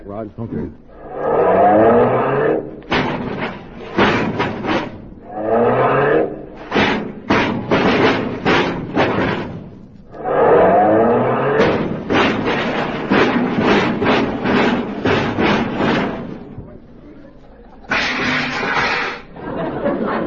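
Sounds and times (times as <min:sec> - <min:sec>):
speech: 0:00.1 - 0:02.7
car engine revving while being parked: 0:01.0 - 0:09.0, 0:10.0 - 0:16.6
clattering knocks and thumps from car being parked: 0:02.6 - 0:05.4, 0:06.4 - 0:10.2, 0:11.6 - 0:17.0, 0:17.8 - 0:19.3
laughter: 0:18.8 - 0:20.2.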